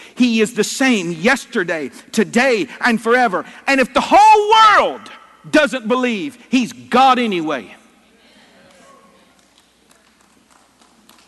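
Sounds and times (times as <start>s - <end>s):
speech: 0.2s - 7.8s
faint murmur of voices: 7.8s - 9.4s
sparse audience clapping: 8.6s - 11.2s.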